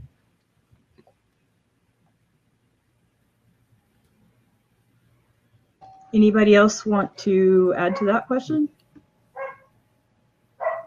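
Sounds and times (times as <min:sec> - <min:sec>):
speech: 0:06.1 - 0:08.8
sharp dog barks: 0:09.4 - 0:09.7, 0:10.6 - 0:10.8.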